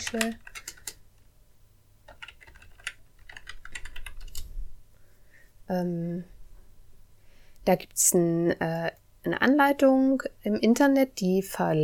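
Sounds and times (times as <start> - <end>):
speech: 0.0 - 0.5, 5.7 - 6.4, 7.7 - 11.8
typing on a computer keyboard: 0.0 - 1.0, 2.1 - 4.5
faint low hum: 0.0 - 11.8.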